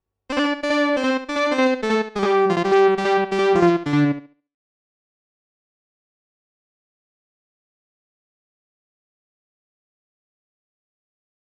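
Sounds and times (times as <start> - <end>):
Moog synthesizer lead with tape echo: 0.3 - 4.3.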